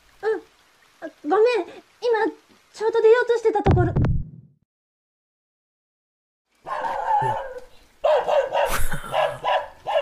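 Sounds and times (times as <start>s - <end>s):
speech: 1.2s - 4.1s
dog barking and yipping: 6.6s - 10.0s.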